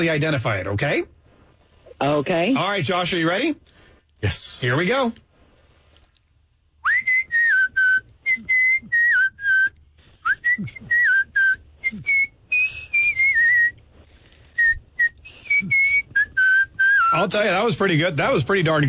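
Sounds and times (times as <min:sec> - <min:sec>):
speech: 0:00.0 - 0:01.2, 0:02.0 - 0:05.2, 0:10.6 - 0:10.9, 0:17.1 - 0:18.8
person whistling a melody: 0:06.8 - 0:13.8, 0:14.6 - 0:17.2.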